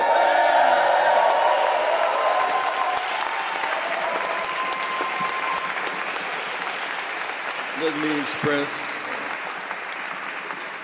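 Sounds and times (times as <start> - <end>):
scattered whoops from the crowd: 0.0 - 6.0
large crowd cheering and screaming: 0.0 - 6.3
large crowd applause: 0.0 - 10.8
speech: 7.9 - 8.9.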